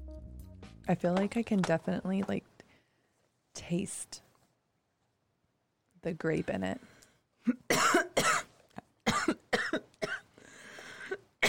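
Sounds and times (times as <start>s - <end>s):
speech: 0.9s - 2.5s, 3.6s - 4.2s, 6.0s - 7.9s
harsh coughing after smoke goes up the nose: 7.4s - 10.3s, 11.0s - 11.4s
raspy wheezing breath: 10.4s - 11.2s.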